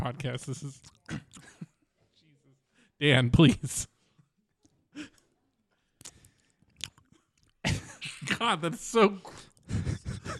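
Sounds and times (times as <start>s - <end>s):
speech: 0.1s - 1.3s, 3.0s - 3.9s, 8.4s - 9.9s
person chewing and eating spaghetti: 6.0s - 7.6s.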